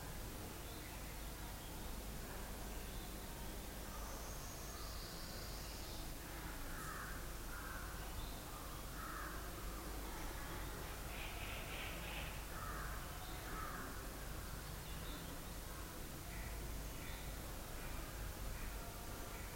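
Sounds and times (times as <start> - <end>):
steady broadband hiss: 0.0 - 19.5
harsh cawing bird calls: 11.1 - 14.0.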